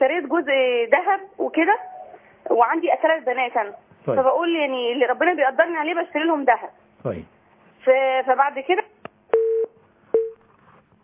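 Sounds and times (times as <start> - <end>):
speech: 0.1 - 8.8
telephone tone after a call is cut off: 9.3 - 10.4.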